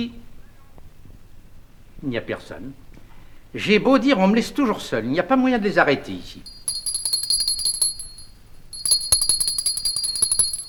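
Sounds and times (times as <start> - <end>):
speech: 0.0 - 0.2, 2.0 - 2.8, 3.5 - 6.5
small hand bell shaken in a stage-play scene: 6.4 - 10.6.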